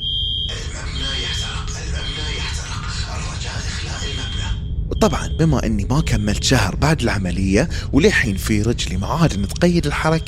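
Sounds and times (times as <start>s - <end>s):
fire alarm with high steady electronic tone: 0.0s - 6.1s, 9.2s - 10.2s
speech: 5.0s - 10.2s.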